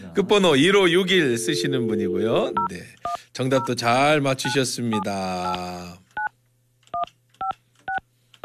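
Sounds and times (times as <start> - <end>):
speech: 0.2 - 6.0
telephone keypad DTMF dialing tones: 7.9 - 8.4.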